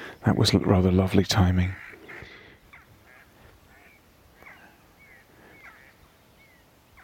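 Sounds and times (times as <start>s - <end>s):
soft outdoor hiss: 0.0s - 7.0s
speech: 0.2s - 1.9s
mallard ducks quacking in flight overhead: 1.4s - 6.0s.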